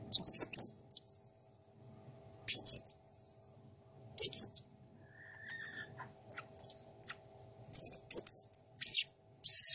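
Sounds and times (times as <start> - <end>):
blue-crowned hanging parrot calls: 0.1 - 1.1, 2.5 - 2.9, 4.2 - 7.2, 7.7 - 9.7.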